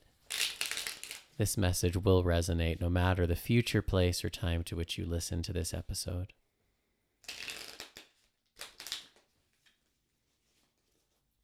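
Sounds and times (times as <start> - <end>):
tarot cards being shuffled: 0.2 - 1.4, 7.2 - 9.8
speech: 1.4 - 6.4.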